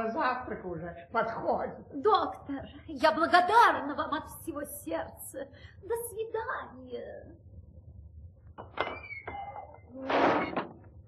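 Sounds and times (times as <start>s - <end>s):
speech: 0.2s - 7.5s, 8.6s - 10.8s
heavy cast-iron door pushed open: 8.8s - 10.9s.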